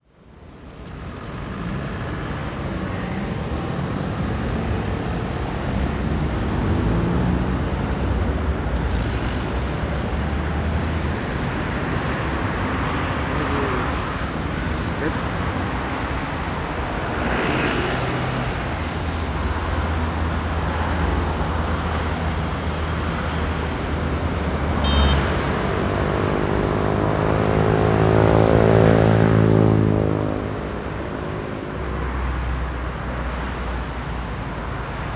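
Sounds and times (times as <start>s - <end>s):
city traffic on an avenue in Buenos Aires by day: 0.0s - 35.1s.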